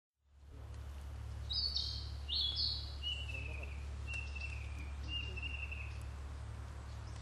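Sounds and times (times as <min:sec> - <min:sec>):
low background hum: 0:00.2 - 0:07.2
narcissus flycatcher singing: 0:01.4 - 0:06.2.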